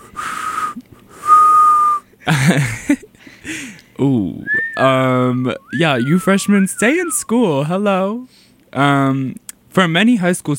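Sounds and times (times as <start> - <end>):
person attempting to whistle: 0.0 - 2.1, 4.5 - 7.4
speech: 2.3 - 3.0, 4.0 - 10.5.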